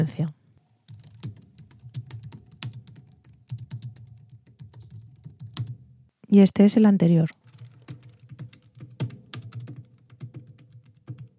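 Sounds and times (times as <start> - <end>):
speech: 0.1 - 0.4, 6.3 - 7.4
typing on a mechanical-like quieter keyboard: 0.9 - 5.8, 7.4 - 11.3.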